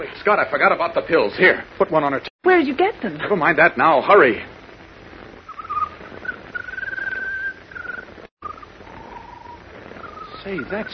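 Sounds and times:
speech: 0:00.0 - 0:04.6, 0:10.5 - 0:10.9
steady hiss: 0:00.0 - 0:10.9
bird singing a thin whistling song: 0:05.5 - 0:10.9.

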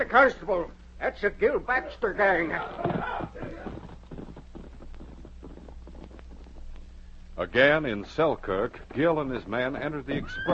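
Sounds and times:
speech: 0:00.0 - 0:03.6, 0:07.4 - 0:10.5
low rumbling background: 0:00.0 - 0:10.5
horse hooves clip-clopping: 0:02.5 - 0:07.0, 0:07.6 - 0:10.5.

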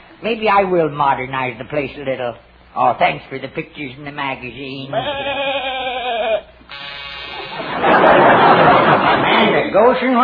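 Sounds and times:
speech: 0:00.2 - 0:05.7, 0:09.7 - 0:10.2
new door buzzer with wavering bleat then raspy electric buzz: 0:06.6 - 0:08.1
laughter: 0:07.4 - 0:10.0.

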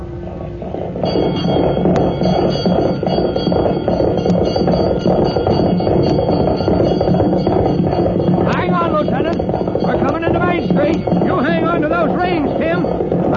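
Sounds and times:
fire bells clanging in alarm: 0:00.0 - 0:13.3
loud dense rumbling commotion: 0:00.0 - 0:13.3
speech: 0:01.0 - 0:04.0
church bells ringing in alarm: 0:01.1 - 0:13.1
indistinct voices: 0:08.2 - 0:13.3.

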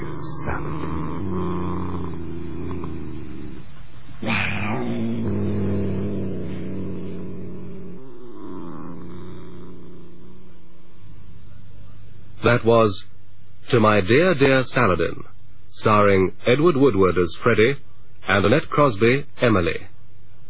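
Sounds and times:
cat purring: 0:00.0 - 0:11.3
speech: 0:00.5 - 0:01.1, 0:12.4 - 0:13.1, 0:13.7 - 0:19.9.

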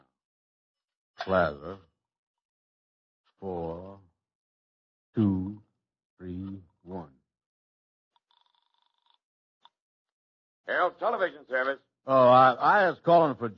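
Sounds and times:
speech: 0:01.2 - 0:01.9, 0:03.4 - 0:04.0, 0:05.2 - 0:05.6, 0:06.2 - 0:07.2, 0:10.7 - 0:13.5
short voiced hummed-sounding bursts: 0:01.3 - 0:01.8, 0:03.4 - 0:04.0, 0:05.2 - 0:05.6.

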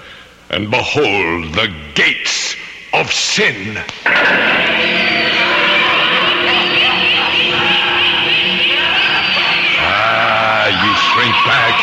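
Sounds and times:
speech: 0:00.5 - 0:05.0, 0:11.2 - 0:11.8
dense crowd of high voices shrieking and wailing: 0:04.1 - 0:11.8.

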